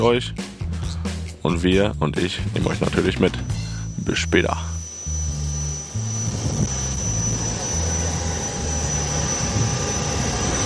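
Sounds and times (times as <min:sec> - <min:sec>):
speech: 0:00.0 - 0:00.6, 0:01.4 - 0:04.7
airplane cabin noise while boarding: 0:02.6 - 0:10.6.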